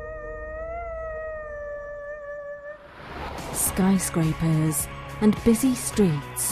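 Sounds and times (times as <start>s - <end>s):
wolf-like creature howling at night: 0.0s - 2.9s
speech: 3.8s - 6.5s.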